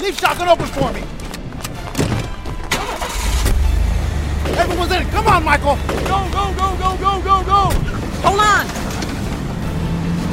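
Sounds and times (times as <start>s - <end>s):
speech: 0.1s - 1.2s, 4.8s - 8.8s
getaway car engine starting: 2.5s - 10.3s.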